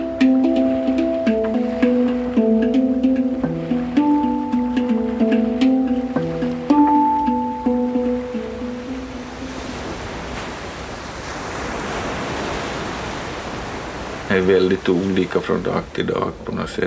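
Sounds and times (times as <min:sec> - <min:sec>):
hang drum played in a slow gentle melody: 0:00.0 - 0:10.1
ocean waves: 0:00.0 - 0:16.8
speech: 0:14.4 - 0:16.8.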